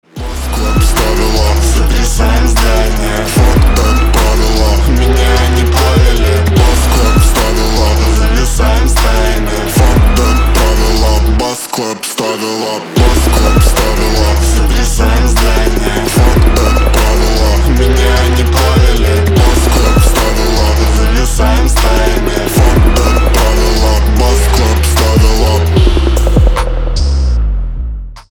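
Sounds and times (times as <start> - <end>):
bass clap: 0.2 - 11.4, 13.0 - 28.2.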